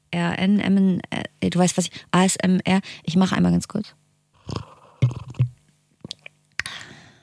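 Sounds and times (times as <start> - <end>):
speech: 0.1 - 4.7
slurping tea close to the microphone: 4.4 - 5.5
low gulping thumps: 4.4 - 5.6.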